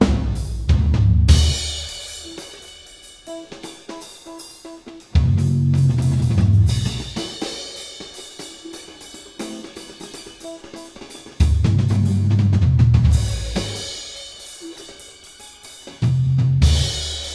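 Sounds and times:
jazz music: 0:00.0 - 0:17.3
trumpet: 0:01.4 - 0:06.0, 0:09.4 - 0:11.4.

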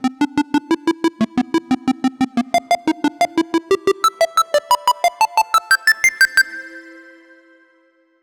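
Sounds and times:
short 8 bit monophonic melody: 0:00.0 - 0:06.5.

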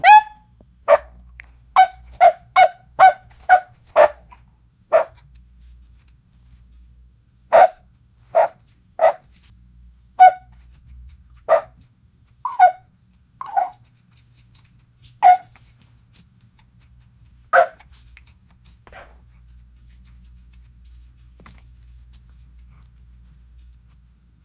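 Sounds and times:
puppy yelping: 0:00.0 - 0:01.1, 0:01.8 - 0:05.2, 0:07.5 - 0:09.4, 0:10.2 - 0:10.5, 0:11.4 - 0:11.8, 0:12.4 - 0:15.7, 0:16.6 - 0:19.2.

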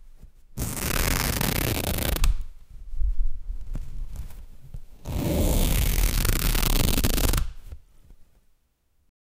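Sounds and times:
heavy rip of tearing fabric: 0:00.6 - 0:02.4, 0:05.0 - 0:07.6.

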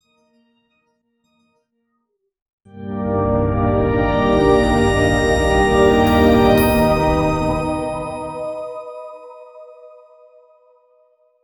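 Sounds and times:
light airy instrumental synths: 0:02.8 - 0:10.0.

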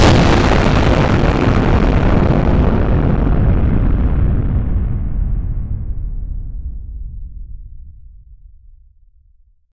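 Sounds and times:
hydrothermal explosion: 0:00.0 - 0:07.2.

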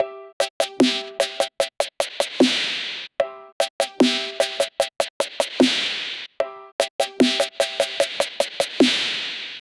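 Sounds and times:
urban trap music beat drop: 0:00.4 - 0:02.9, 0:03.6 - 0:06.1, 0:06.8 - 0:09.2.

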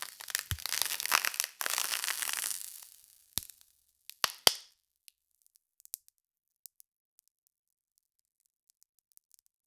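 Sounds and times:
crackling: 0:00.0 - 0:04.7.

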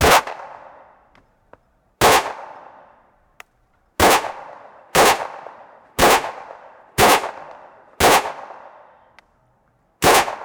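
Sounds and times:
Glock pistol gunshots: 0:00.0 - 0:00.8, 0:02.0 - 0:02.9, 0:04.0 - 0:08.9, 0:10.0 - 0:10.4.

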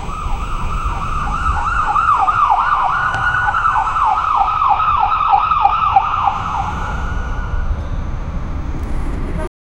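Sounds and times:
ambulance driving fast: 0:00.0 - 0:09.5.

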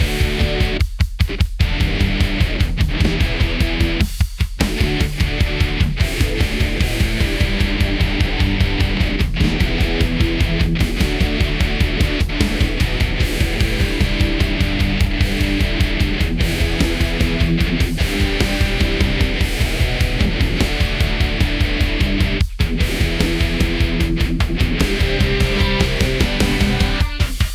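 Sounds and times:
loud bass drums: 0:00.0 - 0:27.5.

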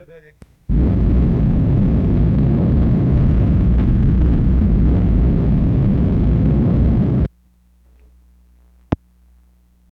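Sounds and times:
monstrous rocket roar: 0:00.7 - 0:07.3.

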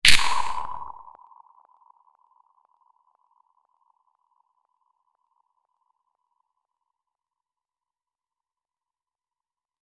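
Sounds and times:
quick whip crack with echo: 0:00.0 - 0:01.0.

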